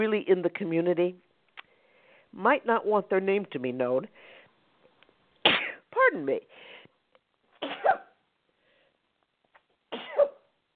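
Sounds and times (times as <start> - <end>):
speech: 0.0 - 1.3, 2.3 - 4.3, 6.0 - 6.7
person sneezing: 5.4 - 5.9, 7.6 - 8.2, 9.9 - 10.5.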